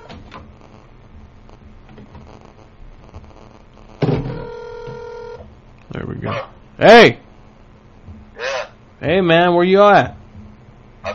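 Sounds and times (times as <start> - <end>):
low noise: 0.0 - 11.1
cell phone call ringing tone: 4.2 - 5.5
speech: 6.2 - 7.2, 9.1 - 10.2.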